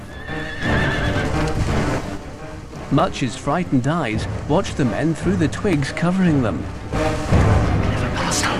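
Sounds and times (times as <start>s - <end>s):
horse whinnying: 0.0s - 1.6s
horses galloping past through a forest clearing: 0.0s - 7.6s
speech: 2.9s - 7.1s, 8.3s - 8.5s.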